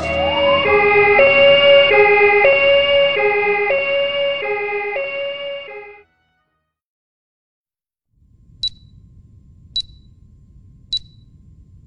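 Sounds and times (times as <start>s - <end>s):
two-tone ambulance siren: 0.0s - 6.2s.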